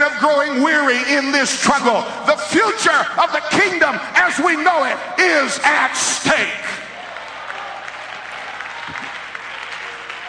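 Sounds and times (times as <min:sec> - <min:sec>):
speech: 0:00.2 - 0:06.8
crowd applauding in praise: 0:06.6 - 0:10.2.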